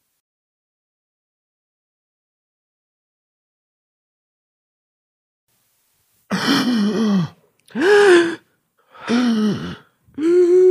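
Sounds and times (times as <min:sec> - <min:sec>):
person gasping: 0:06.3 - 0:10.7.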